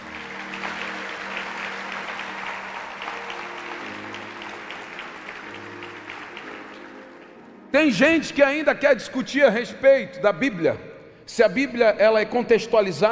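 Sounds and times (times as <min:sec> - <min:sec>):
large audience applauding: 0:00.0 - 0:08.1
low musical drone or keyboard chord: 0:00.0 - 0:08.6
speech: 0:07.8 - 0:13.1.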